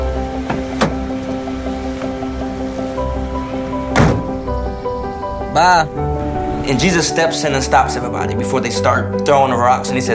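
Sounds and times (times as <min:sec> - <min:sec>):
door opening and shutting: 0:00.4 - 0:06.9
speech: 0:05.6 - 0:06.0, 0:06.7 - 0:10.1.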